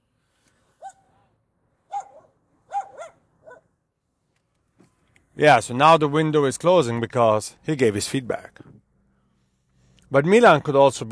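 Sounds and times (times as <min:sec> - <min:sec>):
dog barking from an open window: 0:00.8 - 0:01.1, 0:01.9 - 0:03.7
speech: 0:05.4 - 0:08.8, 0:10.1 - 0:11.1.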